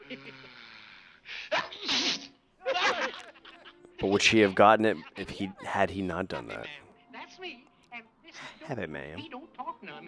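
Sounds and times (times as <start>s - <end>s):
cartoon dwarf sneezing in a 1937 animated film: 1.5s - 3.2s
laughter: 2.6s - 6.8s
speech: 4.0s - 6.8s, 8.7s - 9.4s.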